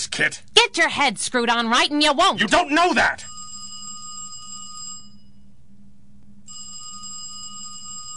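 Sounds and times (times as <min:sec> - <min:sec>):
speech: 0:00.0 - 0:03.3
low hum: 0:00.0 - 0:08.1
telephone ringing: 0:02.9 - 0:05.4, 0:06.5 - 0:08.1.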